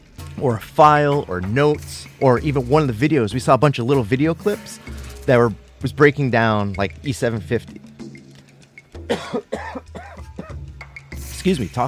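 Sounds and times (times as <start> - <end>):
speech: 0.4 - 7.9, 9.1 - 9.7, 11.4 - 11.8
person coughing harshly: 9.1 - 10.6.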